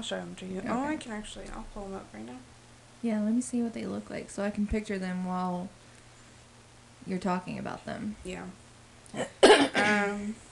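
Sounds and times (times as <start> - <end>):
speech: 0.0 - 5.8, 7.0 - 10.5
harsh cough trailing into a short voiced groan: 9.2 - 10.2.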